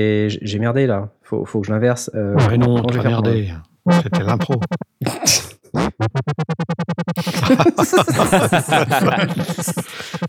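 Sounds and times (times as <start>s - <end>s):
speech: 0.0s - 6.2s, 7.5s - 10.2s
synthesized futuristic space motorbike engine: 5.9s - 7.6s
laughter: 7.2s - 10.2s.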